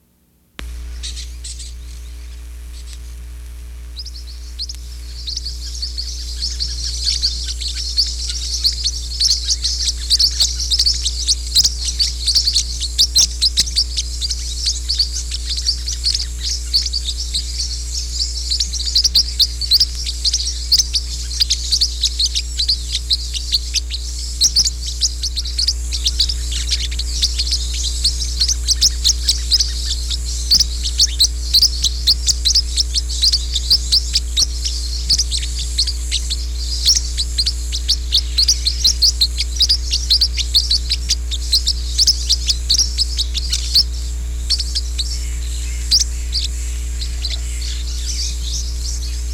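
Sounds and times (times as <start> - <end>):
Green-rumped Parrotlet calling: 0.6 - 49.3.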